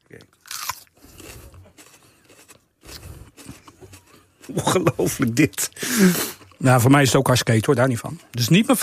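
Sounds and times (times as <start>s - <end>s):
crunchy biting into a chili pepper: 0.1s - 4.1s
chewing a chili pepper: 0.1s - 6.6s
speech: 4.5s - 8.8s.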